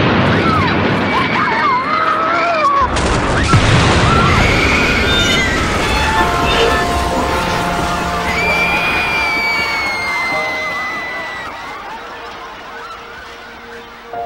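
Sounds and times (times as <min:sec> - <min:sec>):
shouting voices: 0:00.3 - 0:14.2
powerful bomb blast: 0:03.0 - 0:09.4
wailing tones: 0:03.5 - 0:14.2.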